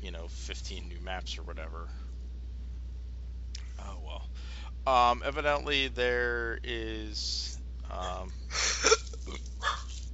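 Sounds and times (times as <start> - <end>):
low hum: 0.0 - 10.1
speech: 0.2 - 2.2, 3.8 - 9.7
dog barking: 9.6 - 10.0.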